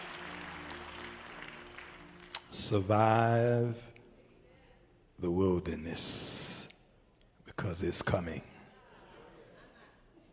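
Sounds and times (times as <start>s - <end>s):
audience clapping hands: 0.0s - 3.0s
speech: 2.6s - 3.9s, 5.2s - 6.4s, 7.6s - 8.5s
laughter: 8.5s - 10.3s.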